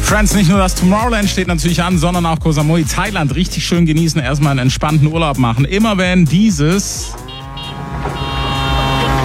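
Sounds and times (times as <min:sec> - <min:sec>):
speech: 0:00.1 - 0:07.2
tuk-tuk with small puttering engine driving past: 0:07.1 - 0:09.2.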